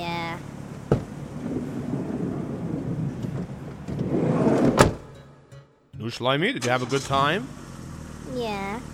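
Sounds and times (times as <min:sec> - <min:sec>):
car engine rumbling as the car pulls up: 0:00.0 - 0:08.9
loud thump: 0:00.9 - 0:01.1, 0:03.2 - 0:05.2
speech: 0:06.1 - 0:07.6, 0:08.4 - 0:08.9.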